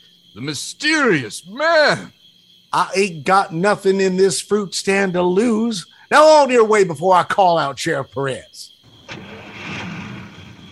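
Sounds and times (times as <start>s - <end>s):
speech: 0.4s - 9.8s
car engine starting in the Ozark Mountains in Missouri: 8.9s - 10.7s.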